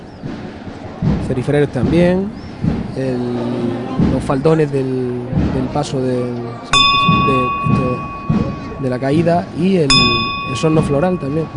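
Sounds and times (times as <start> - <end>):
indistinct voices murmuring: 0.0 - 11.5
speech: 1.3 - 8.1, 8.8 - 11.5
bell signalling to lower procession float: 6.7 - 11.5.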